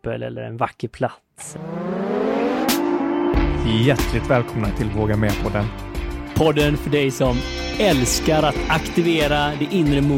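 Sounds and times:
speech: 0:00.0 - 0:02.0, 0:03.7 - 0:10.1
motorcycle engine revving: 0:01.5 - 0:03.6.

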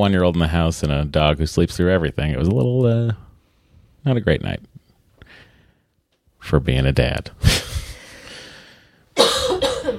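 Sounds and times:
speech: 0:00.0 - 0:03.2, 0:04.0 - 0:04.7, 0:06.4 - 0:07.6
person coughing harshly to clear something caught in the throat: 0:09.2 - 0:09.9.

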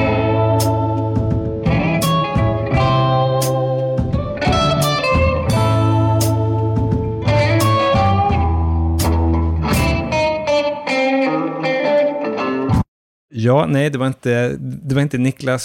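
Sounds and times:
title sequence theme music of a TV crime series: 0:00.0 - 0:12.0
speech: 0:13.4 - 0:15.6.

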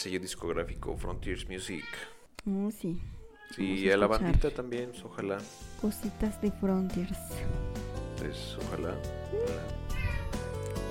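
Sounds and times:
speech: 0:00.0 - 0:09.9
cat meowing: 0:01.7 - 0:02.3, 0:03.2 - 0:03.9, 0:09.3 - 0:10.6.

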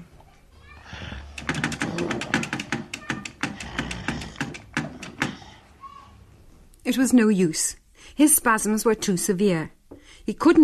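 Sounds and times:
electric typewriter keys clattering: 0:01.3 - 0:05.6
speech: 0:06.9 - 0:10.6.

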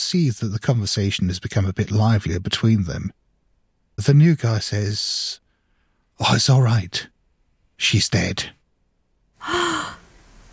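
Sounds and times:
speech: 0:00.0 - 0:03.2, 0:04.0 - 0:05.4, 0:06.2 - 0:07.1, 0:07.8 - 0:08.6, 0:09.4 - 0:10.0
sharp startled gasp: 0:09.4 - 0:10.1.

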